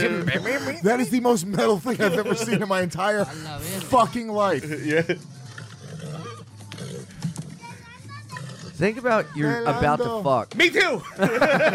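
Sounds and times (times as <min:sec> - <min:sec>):
laughter: 0:00.0 - 0:05.4, 0:10.9 - 0:11.7
speech: 0:00.0 - 0:05.4, 0:08.8 - 0:11.7
horse farting while defecating: 0:05.4 - 0:07.6, 0:08.2 - 0:08.8.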